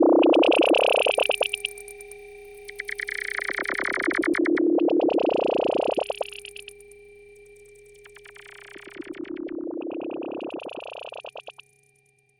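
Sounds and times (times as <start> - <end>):
glitchy interface bleep: 0.0 - 1.7, 2.8 - 6.7, 8.2 - 11.6.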